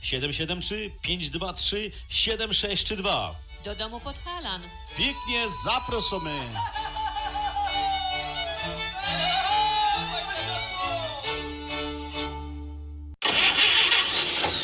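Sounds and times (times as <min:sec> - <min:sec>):
speech: 0:00.0 - 0:06.8
laughter: 0:05.2 - 0:11.4
old car engine rough noisy burst: 0:13.2 - 0:14.6
old car starter whining and grinding: 0:13.2 - 0:14.6.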